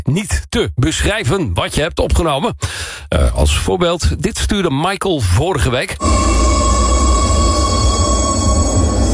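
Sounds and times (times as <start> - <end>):
speech: 0.1 - 6.7
loud constant metro train rumble: 6.0 - 9.1
steady high warning tones: 6.0 - 9.1.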